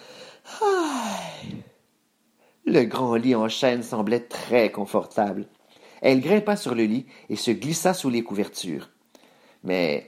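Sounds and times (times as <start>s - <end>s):
person yawning: 0.0s - 1.8s
speech: 2.7s - 9.0s, 9.6s - 10.0s.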